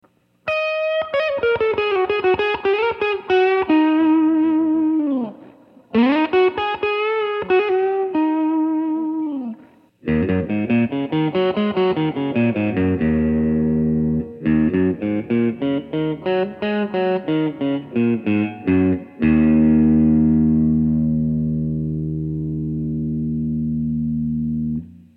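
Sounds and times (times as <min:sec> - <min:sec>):
Stratocaster electric guitar through ECC832 tube: 0:00.0 - 0:25.1.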